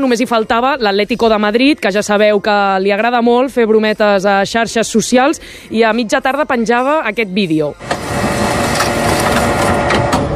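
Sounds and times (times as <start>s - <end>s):
speech: 0.0s - 8.2s
printer whirring and rattling as it feeds out a sheet of paper: 7.8s - 10.3s.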